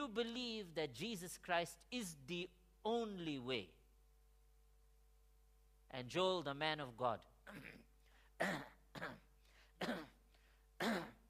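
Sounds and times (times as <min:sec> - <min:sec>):
speech: 0:00.0 - 0:03.8, 0:05.9 - 0:09.2, 0:09.8 - 0:10.2, 0:10.8 - 0:11.2
man clearing his throat: 0:07.4 - 0:10.2, 0:10.8 - 0:11.2.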